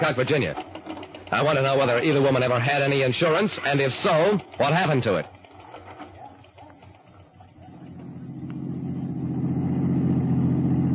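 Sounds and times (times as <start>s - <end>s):
speech: 0.0s - 5.4s
rented car engine revving as the car accelerates: 7.6s - 10.9s.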